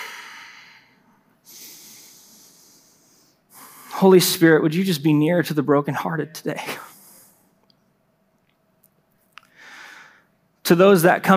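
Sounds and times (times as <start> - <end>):
deep breath taken during a pause for prayer: 0.0 - 4.0, 9.5 - 10.3
speech: 4.0 - 6.9, 10.7 - 11.3.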